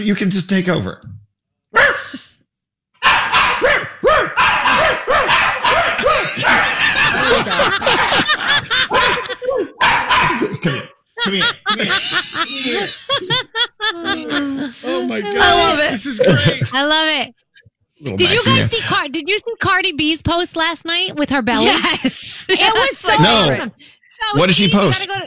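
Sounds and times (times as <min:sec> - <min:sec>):
speech: 0:00.0 - 0:01.2, 0:01.9 - 0:02.3, 0:06.3 - 0:09.7, 0:10.4 - 0:17.4, 0:18.0 - 0:25.2
small dog barking and yipping excitedly: 0:01.8 - 0:02.0, 0:03.0 - 0:06.8, 0:08.9 - 0:10.5
people laughing: 0:05.6 - 0:16.9, 0:18.1 - 0:19.1, 0:21.5 - 0:23.6.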